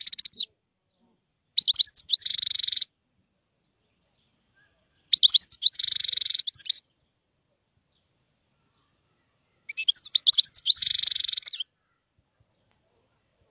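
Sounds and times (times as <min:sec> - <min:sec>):
wild European goldfinch song with bright notes and buzzy trill: 0:00.0 - 0:00.5, 0:01.5 - 0:02.9, 0:03.7 - 0:07.2, 0:07.9 - 0:12.8.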